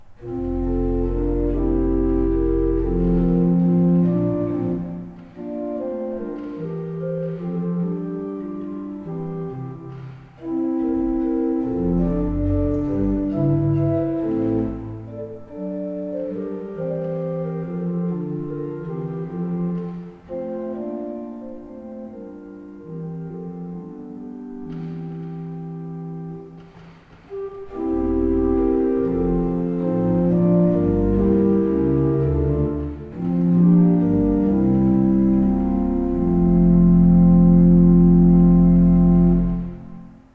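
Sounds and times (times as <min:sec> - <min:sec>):
Fleiter pipe organ: 0:00.0 - 0:40.3.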